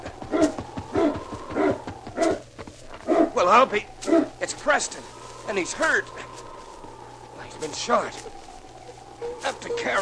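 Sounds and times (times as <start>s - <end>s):
sled dog team barking: 0.0s - 3.4s, 4.0s - 4.4s, 9.2s - 9.9s
speech: 3.4s - 6.3s, 7.6s - 8.4s, 9.4s - 10.0s.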